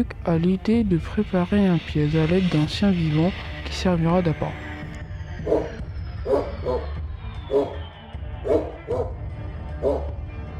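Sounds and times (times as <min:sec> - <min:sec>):
speech: 0:00.0 - 0:04.7
dog barking in a crate in a corridor: 0:05.5 - 0:05.7, 0:06.3 - 0:06.9, 0:07.5 - 0:07.8, 0:08.4 - 0:09.2, 0:09.8 - 0:10.2.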